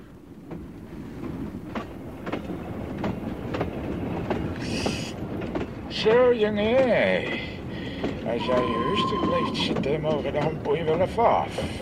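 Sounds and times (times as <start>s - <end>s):
clickety-clack train wheel knocks: 0.0s - 11.8s
train rumbling along the rails: 0.0s - 11.8s
speech: 6.0s - 7.5s, 8.3s - 11.8s
brief high metallic squeal: 8.4s - 9.8s.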